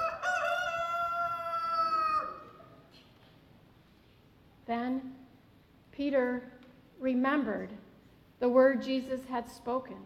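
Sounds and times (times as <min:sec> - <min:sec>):
rooster crowing: 0:00.0 - 0:02.7
speech: 0:04.7 - 0:05.2, 0:06.0 - 0:07.8, 0:08.4 - 0:10.0.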